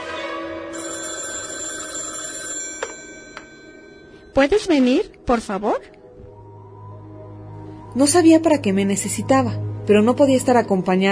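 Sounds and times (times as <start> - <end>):
telephone ringing with a steady bright tone: 0.7 - 4.4
speech: 4.4 - 6.0, 8.0 - 11.1.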